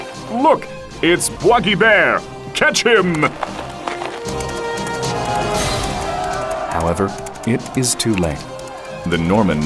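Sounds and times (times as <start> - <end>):
speech: 0.4 - 3.6, 6.8 - 9.6
galloping hooves of a horse carrying two riders: 1.3 - 9.6.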